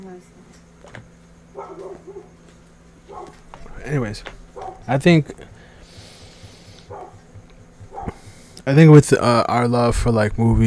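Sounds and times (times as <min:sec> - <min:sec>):
speech: 0:00.0 - 0:01.0, 0:03.9 - 0:05.5, 0:08.7 - 0:10.6
low hiss: 0:00.0 - 0:10.6
faint rhythmic thumping: 0:00.7 - 0:10.6
dog giving high yelping barks: 0:01.5 - 0:02.4, 0:03.0 - 0:03.8, 0:04.4 - 0:05.0, 0:06.9 - 0:08.2.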